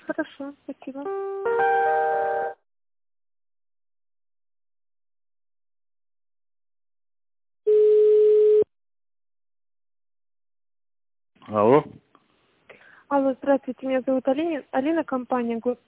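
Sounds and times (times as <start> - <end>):
speech: 0.2 - 1.5, 11.5 - 12.0, 13.1 - 15.8
telephone ringback tone while a call is being transferred: 7.7 - 8.7.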